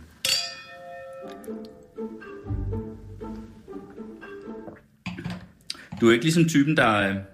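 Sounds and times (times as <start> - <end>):
glasses clinking in a toast: 0.2 - 1.9
speech: 6.0 - 7.3.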